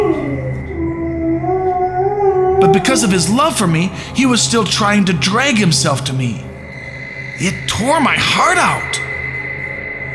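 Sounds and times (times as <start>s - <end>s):
dog crying and yelping in pain: 0.0s - 3.3s
speech: 2.7s - 6.5s, 7.4s - 9.1s.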